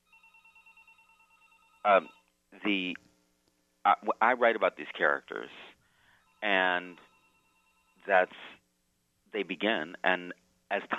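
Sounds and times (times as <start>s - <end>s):
telephone ringing in short bright electronic bursts: 0.0s - 2.2s, 6.2s - 8.1s
speech: 1.8s - 3.1s, 3.8s - 5.7s, 6.4s - 7.1s, 8.0s - 8.6s, 9.3s - 10.9s.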